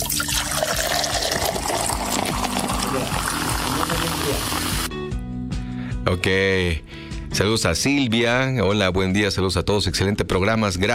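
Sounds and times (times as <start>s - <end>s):
soft drink opened and poured in a hissing stream: 0.0s - 4.9s
speech: 6.1s - 10.9s.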